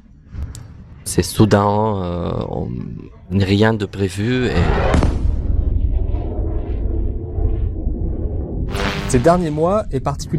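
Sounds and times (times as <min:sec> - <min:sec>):
speech: 0:01.1 - 0:05.2, 0:09.1 - 0:10.3
sonic boom from military jet breaking the sound barrier over Lebanon: 0:04.5 - 0:10.3.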